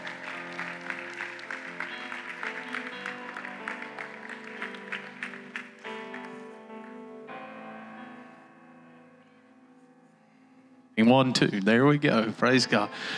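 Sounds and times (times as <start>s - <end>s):
audience clapping in praise: 0.0s - 7.0s
sustained keyboard music: 0.0s - 13.1s
speech: 11.0s - 13.1s.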